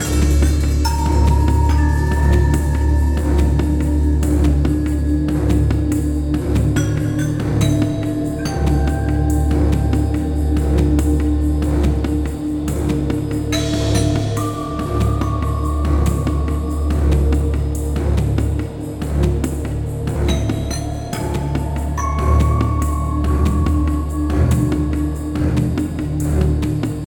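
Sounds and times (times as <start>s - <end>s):
suspense film music: 0.0s - 27.0s.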